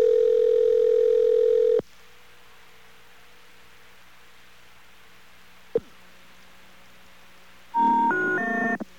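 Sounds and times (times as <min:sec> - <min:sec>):
steady telephone tone: 0:00.0 - 0:01.8, 0:07.8 - 0:08.8
three rising tones of telephone error signal: 0:07.8 - 0:08.8.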